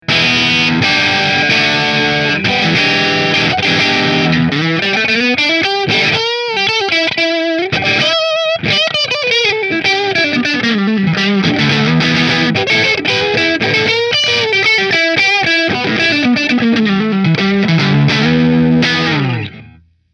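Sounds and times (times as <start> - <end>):
New Orleans Guitars Voodoo Custom guitar: 0.0 - 20.1.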